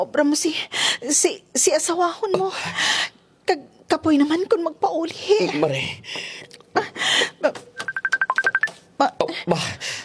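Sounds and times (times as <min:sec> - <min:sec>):
speech: 0:00.0 - 0:06.9, 0:09.0 - 0:10.0
cellphone ringing with short electronic beeps: 0:07.8 - 0:08.8.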